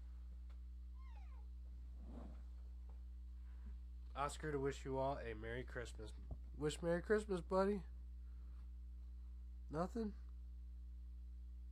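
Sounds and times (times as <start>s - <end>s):
soft rustling or handling noise: 0.0s - 4.2s
steady low electrical hum: 0.0s - 11.6s
cat meowing: 1.0s - 1.5s
speech: 4.2s - 7.9s, 9.7s - 10.2s.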